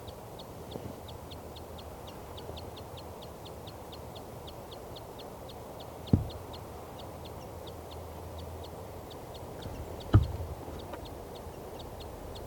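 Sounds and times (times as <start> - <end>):
female bird on nest calling in response to mate: 0.0 - 12.4
brief thumps: 6.1 - 6.5, 9.6 - 11.0.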